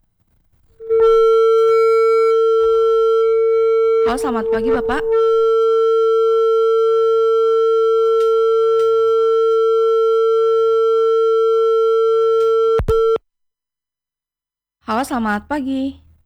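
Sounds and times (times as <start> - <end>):
telephone tone on the line after a call is disconnected: 0.8 - 13.2
speech: 4.1 - 5.5, 15.0 - 16.0
telephone line click: 8.2 - 9.0, 12.4 - 13.0.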